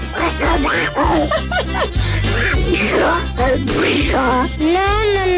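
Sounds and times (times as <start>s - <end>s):
laughter: 0.1s - 2.7s
person imitating duck quacking: 0.2s - 1.2s, 2.4s - 4.5s
speech: 0.6s - 5.3s.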